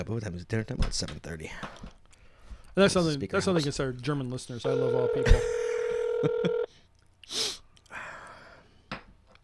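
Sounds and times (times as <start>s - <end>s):
speech: 0.0s - 2.0s, 2.8s - 5.6s, 6.2s - 6.6s
touch-tone telephone dialing beeps placing a call: 4.7s - 6.7s.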